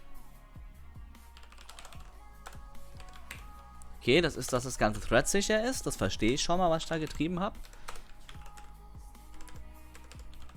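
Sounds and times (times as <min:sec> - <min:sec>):
typing on a computer keyboard: 0:01.4 - 0:03.7, 0:06.2 - 0:10.5
speech: 0:04.0 - 0:07.8.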